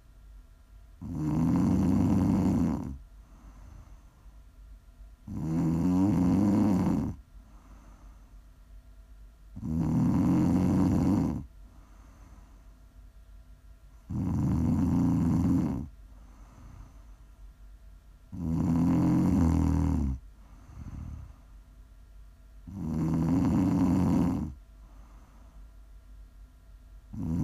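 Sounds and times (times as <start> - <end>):
loud rattling snoring: 1.0 - 3.0, 5.2 - 7.2, 9.6 - 11.5, 14.1 - 15.9, 18.3 - 21.3, 22.7 - 24.6, 27.1 - 27.4
short soft snort: 1.0 - 4.2, 5.3 - 8.3, 9.6 - 12.6, 14.0 - 17.1, 18.3 - 21.5, 22.6 - 25.6, 27.1 - 27.4
quiet breathing: 1.0 - 4.6, 5.2 - 8.8, 9.5 - 13.0, 13.8 - 17.5, 18.3 - 21.9, 22.6 - 26.0, 27.1 - 27.4.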